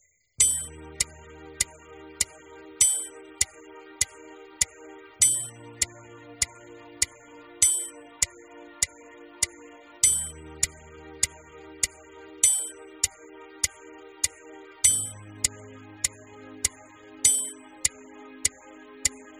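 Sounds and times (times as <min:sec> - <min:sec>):
warm-up exercise playalong in E-flat: 0:00.4 - 0:19.3.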